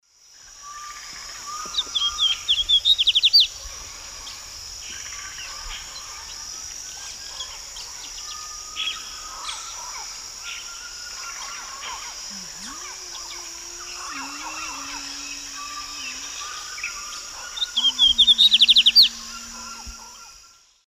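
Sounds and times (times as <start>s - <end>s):
male Sporophila lineola song in eastern lowlands of South America: 0.8s - 3.6s, 7.0s - 20.6s.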